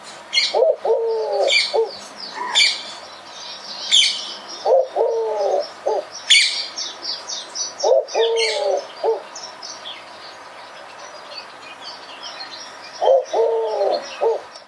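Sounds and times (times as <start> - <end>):
other birds giving high chirps and twitters: 0.0 - 14.6
bird giving low hollow cooing phrases: 0.3 - 3.0, 3.9 - 6.7, 7.8 - 9.3, 13.0 - 14.6.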